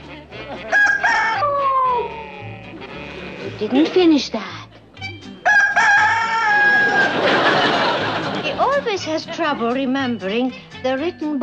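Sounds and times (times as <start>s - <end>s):
laughter: 0.2s - 4.2s, 6.2s - 9.8s
rooster crowing: 0.7s - 2.3s, 5.4s - 8.0s
speech: 3.6s - 4.6s, 9.0s - 11.4s.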